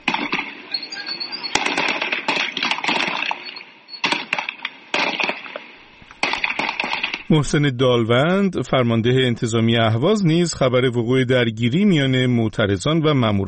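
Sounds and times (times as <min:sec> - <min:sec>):
gunshots during street clashes: 0:00.0 - 0:07.4
speech: 0:07.3 - 0:13.4.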